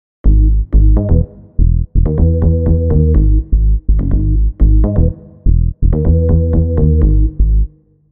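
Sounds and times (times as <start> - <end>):
dreamy 808 bass: 0.2 - 7.8.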